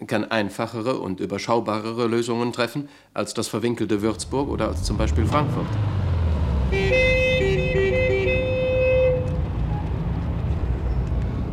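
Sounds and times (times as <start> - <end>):
speech: 0.1 - 6.0
vehicles in a traffic jam on a Frankfurt street rumbling: 3.9 - 11.5
car horns tooting: 6.6 - 9.5.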